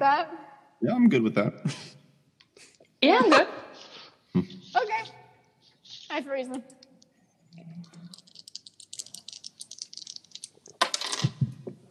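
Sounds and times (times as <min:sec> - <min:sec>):
speech: 0:00.0 - 0:02.0, 0:03.0 - 0:03.6, 0:04.4 - 0:05.2, 0:06.1 - 0:06.8
small hard dice clattering and rattling: 0:08.1 - 0:11.4
dice bouncing on a hard floor: 0:08.2 - 0:11.8.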